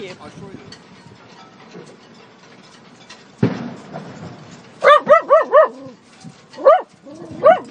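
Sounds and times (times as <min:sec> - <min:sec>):
speech: 0:00.1 - 0:01.0
dog barking: 0:04.8 - 0:05.9, 0:06.6 - 0:07.7.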